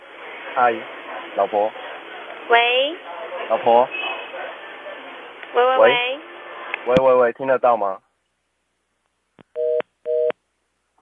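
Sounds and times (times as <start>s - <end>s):
speech: 0.6s - 1.8s, 2.5s - 4.0s, 5.5s - 6.2s, 6.8s - 8.0s
phone hang-up or busy tone beeps: 9.6s - 10.3s.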